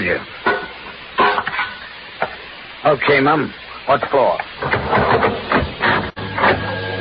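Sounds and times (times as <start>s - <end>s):
speech: 0.0s - 0.4s, 2.8s - 4.9s
elevator ascending: 4.7s - 7.0s.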